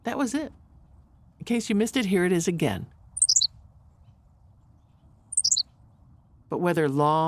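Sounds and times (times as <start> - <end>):
speech: 0.0 - 0.6, 1.4 - 3.0, 6.5 - 7.2
Henslow's sparrow song: 3.1 - 6.1.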